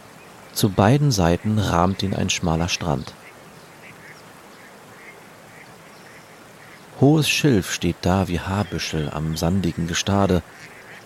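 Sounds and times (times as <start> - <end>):
steady outdoor noise: 0.0 - 11.0
speech: 0.6 - 3.2, 7.0 - 10.8
ducks quacking: 1.2 - 6.9, 8.0 - 11.0.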